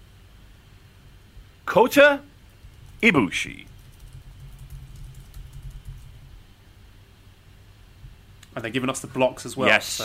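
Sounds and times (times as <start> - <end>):
speech: 1.7 - 2.3, 3.0 - 3.7, 8.6 - 10.0
typing on a computer keyboard: 2.5 - 3.0, 3.6 - 6.3.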